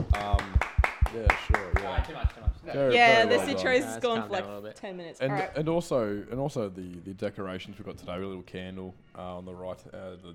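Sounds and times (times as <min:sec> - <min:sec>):
few people clapping: 0:00.0 - 0:02.6
speech: 0:01.1 - 0:10.3.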